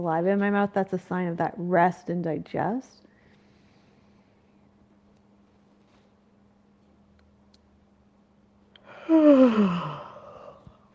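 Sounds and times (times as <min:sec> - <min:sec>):
speech: 0:00.0 - 0:03.0, 0:09.1 - 0:10.0
person yawning deliberately: 0:08.8 - 0:10.7.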